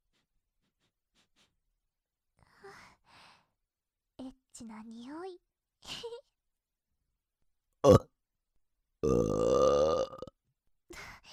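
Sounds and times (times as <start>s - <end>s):
speech: 4.6s - 6.3s, 7.8s - 8.1s
loud drawn-out burp: 7.8s - 8.1s, 9.0s - 10.4s
short guttural gulp: 7.8s - 8.1s, 9.0s - 10.3s.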